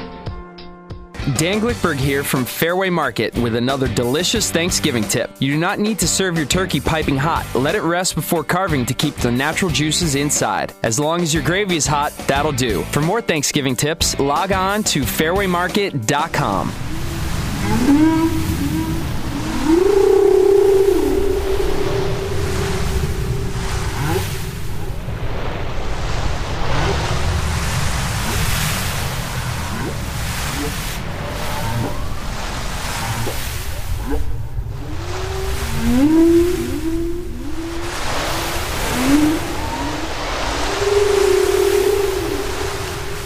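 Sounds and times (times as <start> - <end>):
speech: 1.3 - 16.9
deep rumbling underwater wash: 16.3 - 43.2
moaning whale calls: 16.3 - 43.2.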